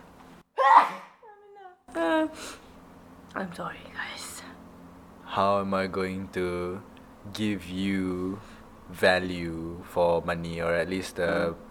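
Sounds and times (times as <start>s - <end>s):
person sneezing: 0.6s - 1.2s
speech: 3.4s - 4.3s, 5.3s - 11.6s.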